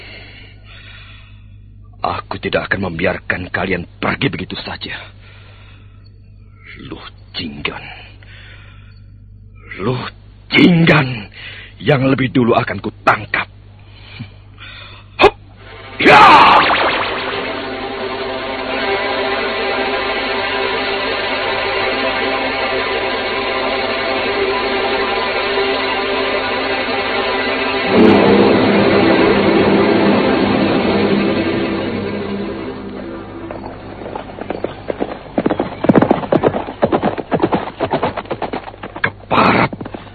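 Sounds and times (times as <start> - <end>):
speech: 2.0 - 5.2, 6.7 - 8.1, 9.8 - 11.2, 11.8 - 13.5, 16.0 - 16.4
long sustained droning wash of sound: 15.5 - 38.6
horses galloping away with fleeing riders: 34.0 - 40.1.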